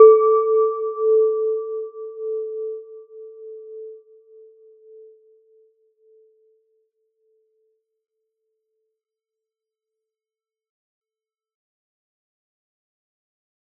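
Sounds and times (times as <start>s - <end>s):
glass synth: 0.0s - 2.6s.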